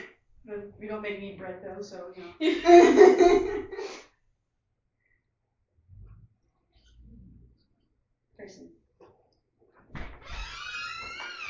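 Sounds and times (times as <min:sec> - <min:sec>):
speech: 0:00.5 - 0:04.0
laughter: 0:02.4 - 0:04.0
front door creaking open: 0:09.9 - 0:11.4.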